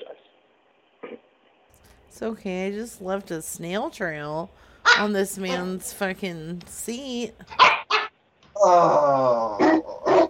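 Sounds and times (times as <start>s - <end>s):
speech: 2.1s - 7.7s, 8.6s - 9.7s
dog giving a drawn-out whining cry: 7.5s - 8.1s, 8.7s - 10.2s.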